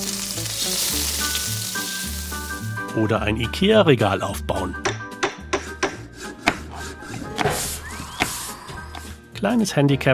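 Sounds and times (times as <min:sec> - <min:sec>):
egg frying in a pan cooked by a research robot: 0:00.0 - 0:02.8
speech: 0:03.0 - 0:04.9, 0:09.4 - 0:10.1.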